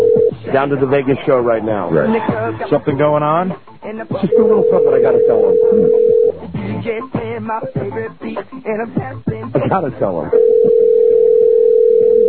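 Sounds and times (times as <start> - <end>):
telephone ringing tone on the line, unanswered: 0.0 - 0.4, 4.3 - 6.4, 10.3 - 12.2
speech: 0.6 - 6.2, 6.8 - 10.4.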